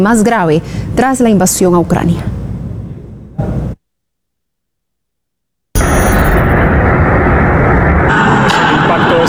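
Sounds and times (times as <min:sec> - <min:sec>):
speech: 0:00.0 - 0:02.4
brief burst of noise: 0:05.8 - 0:09.2
heavy sustained roar of fire after a drone explosion: 0:05.8 - 0:09.2
loud explosion of a Russian drone striking an apartment block in Romania: 0:05.8 - 0:09.2.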